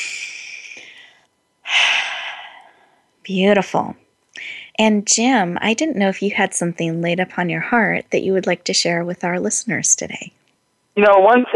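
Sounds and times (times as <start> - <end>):
group taking deep breaths together during a guided mindfulness exercise: 0.0 - 3.0
speech: 3.2 - 4.0, 4.8 - 10.4, 11.0 - 11.5.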